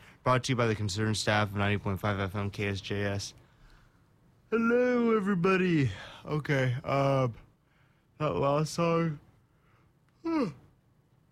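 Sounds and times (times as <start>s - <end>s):
speech: 0.2s - 3.4s, 4.5s - 7.4s, 8.2s - 9.2s, 10.2s - 10.6s
person yawning: 10.2s - 10.7s.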